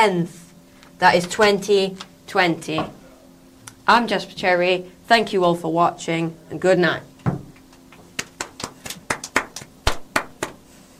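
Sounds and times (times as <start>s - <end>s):
speech: 0.0s - 0.4s, 1.0s - 3.0s, 3.9s - 7.1s
sparse applause from a small audience: 8.2s - 10.5s.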